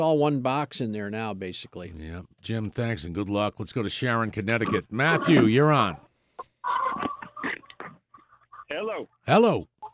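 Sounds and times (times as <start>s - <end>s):
speech: 0.0s - 6.8s, 8.9s - 9.7s
chickens clucking behind a caller on a phone line: 4.6s - 8.7s.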